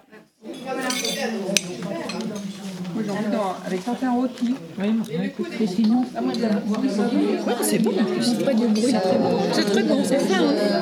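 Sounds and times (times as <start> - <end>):
murmur of voices: 0.0 - 10.8
plates and cutlery clinking as diners take their plates: 0.5 - 3.1
speech: 3.1 - 10.8.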